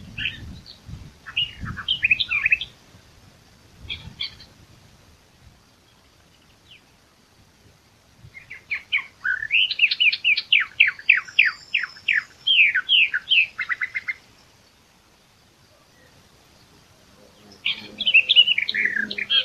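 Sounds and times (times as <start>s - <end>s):
Eastern Orphean Warbler song, Sylvia crassirostris: 0.0s - 19.4s.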